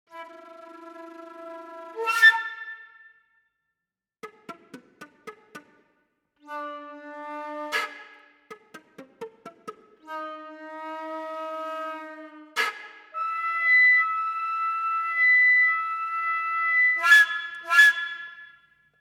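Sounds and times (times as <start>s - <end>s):
flute flutter, bends, jet whistle, multiphonics and slaps: 0.1s - 3.0s, 6.4s - 18.6s.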